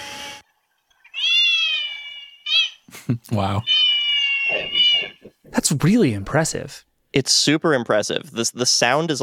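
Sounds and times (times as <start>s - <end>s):
cat meowing through headphones' cat mode: 1.2s - 2.7s, 3.6s - 5.4s
speech: 2.9s - 3.8s, 5.5s - 9.2s.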